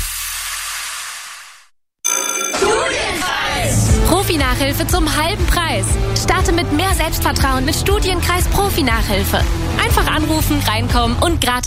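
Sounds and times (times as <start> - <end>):
telephone ringing in a bright buzzy electronic tone: 2.0 - 3.3
speech: 4.4 - 11.6.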